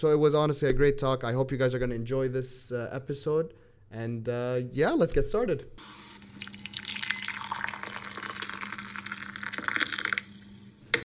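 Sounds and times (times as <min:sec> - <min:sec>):
speech: 0:00.0 - 0:06.5
coffee pouring into a cup: 0:06.2 - 0:10.7.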